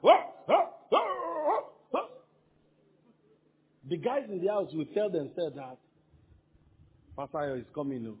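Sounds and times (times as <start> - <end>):
dogs at a house barking: 0.0 - 2.3
speech: 4.0 - 5.9, 7.2 - 8.1.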